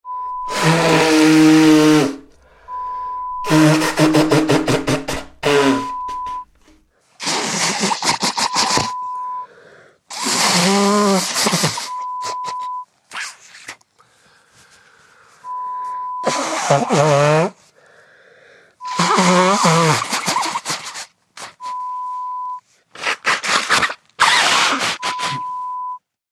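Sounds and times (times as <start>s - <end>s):
person blowing nose: 0.4s - 9.2s, 10.1s - 13.8s, 15.8s - 17.8s, 18.8s - 22.3s, 22.9s - 25.7s.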